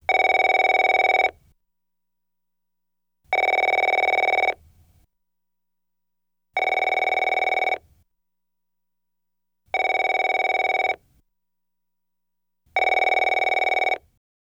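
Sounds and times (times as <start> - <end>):
modern phone ringing: 0.1 - 1.3, 3.4 - 4.6, 6.6 - 7.8, 9.8 - 11.0, 12.8 - 14.0.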